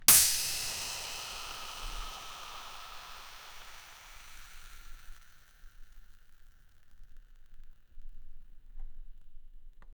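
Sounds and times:
champagne cork popping: 0.0 - 7.6.

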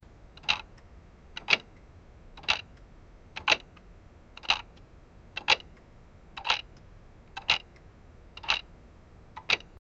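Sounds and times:
old vintage clock ticking slowly: 0.4 - 1.8, 2.4 - 2.8, 3.4 - 3.8, 4.4 - 4.8, 5.4 - 5.8, 6.4 - 7.8, 8.4 - 8.7, 9.4 - 9.8.

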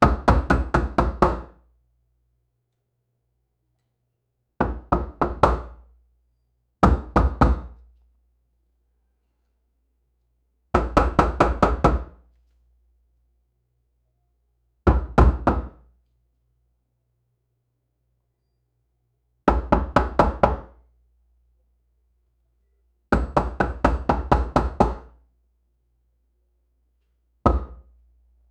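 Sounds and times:
loud knocking on front door: 0.0 - 1.5, 4.6 - 5.8, 6.8 - 7.7, 10.7 - 12.2, 14.8 - 15.8, 19.5 - 20.8, 23.1 - 25.1, 27.5 - 27.8.

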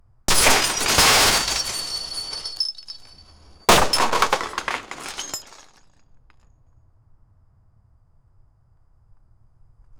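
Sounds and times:
huge lego spaceship crash: 0.3 - 5.8.

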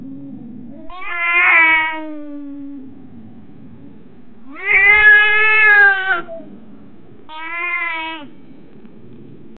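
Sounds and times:
cat laughing: 0.3 - 2.9, 4.5 - 6.6, 7.3 - 8.3.

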